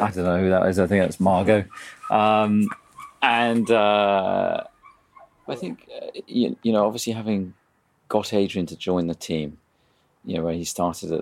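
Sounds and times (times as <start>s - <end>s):
speech: 0.0s - 4.7s, 5.5s - 9.6s, 10.2s - 11.1s
dog barking: 1.7s - 3.9s.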